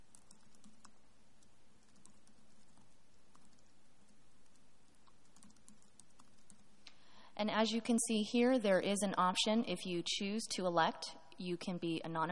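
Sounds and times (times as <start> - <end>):
typing on a computer keyboard: 0.0 - 6.8
speech: 7.4 - 12.3.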